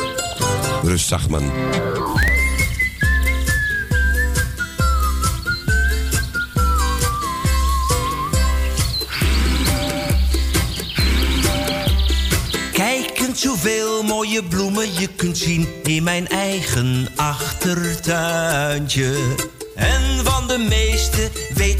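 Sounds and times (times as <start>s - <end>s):
backing music with a steady beat: 0.0s - 21.7s
speech: 0.8s - 2.3s, 13.4s - 21.7s
person whistling a clear gliding melody with trills: 2.1s - 13.2s, 19.9s - 21.7s.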